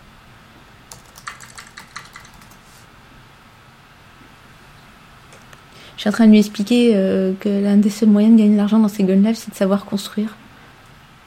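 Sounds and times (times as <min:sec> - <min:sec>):
typing on a computer keyboard: 0:00.9 - 0:02.6
speech: 0:06.0 - 0:10.4.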